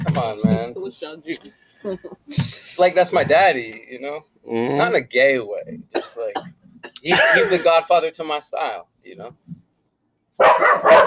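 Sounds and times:
speech: 0.2 - 9.5, 10.4 - 11.0
dogs barking: 10.4 - 11.0.

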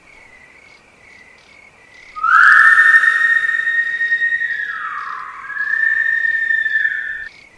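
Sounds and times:
eerie folklore creature's whistle: 2.2 - 7.3.

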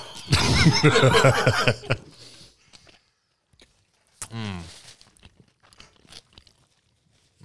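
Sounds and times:
laughter: 0.0 - 2.3
chewing a burger: 2.2 - 7.4
biting into a burger: 2.5 - 7.4
small mouth sounds: 2.6 - 7.4.

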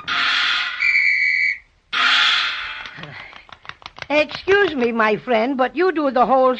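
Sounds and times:
shrill whistle blast blown by a seal during a ball-balancing trick: 0.0 - 2.4
scattered clicks and thumps: 2.0 - 4.9
speech: 4.1 - 6.5.

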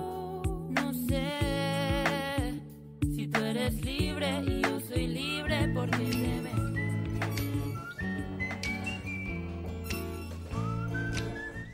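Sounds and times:
loud musical backing with low sustained tones: 0.0 - 11.7
thin rising whistle: 6.6 - 9.4, 10.5 - 11.7.

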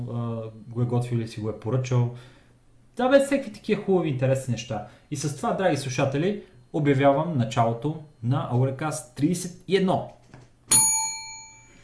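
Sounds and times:
faint low hum: 0.0 - 11.8
speech: 0.1 - 2.4, 3.0 - 10.8
single bell strike ringing: 10.7 - 11.8.

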